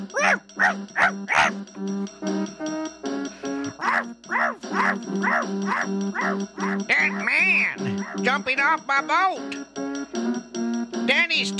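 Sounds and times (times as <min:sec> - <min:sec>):
speech: 0:00.0 - 0:10.5, 0:11.1 - 0:11.5
dog barking: 0:00.2 - 0:01.6, 0:03.8 - 0:06.9, 0:08.0 - 0:08.2.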